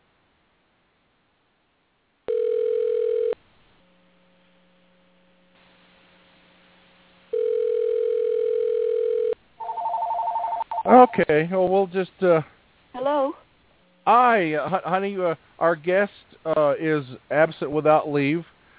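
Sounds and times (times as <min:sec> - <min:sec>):
low electrical hum: 0:00.0 - 0:18.7
loud steady telephone tone while placing a call: 0:02.3 - 0:03.4, 0:07.3 - 0:11.2
speech: 0:10.9 - 0:13.4, 0:14.1 - 0:18.5.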